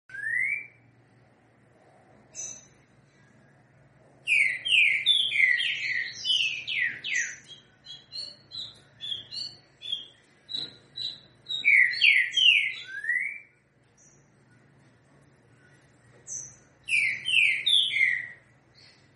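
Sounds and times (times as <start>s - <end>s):
Green-winged saltator singing slurred whistles and high notes: 0.1s - 0.8s, 4.3s - 13.6s, 16.4s - 18.4s.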